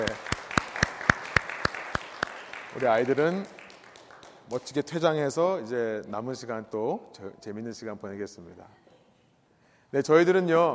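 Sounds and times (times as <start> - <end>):
church audience applauding: 0.0 - 4.9
sharp evenly spaced claps: 0.0 - 5.1
speech: 2.8 - 3.6, 4.5 - 8.8, 9.9 - 10.7.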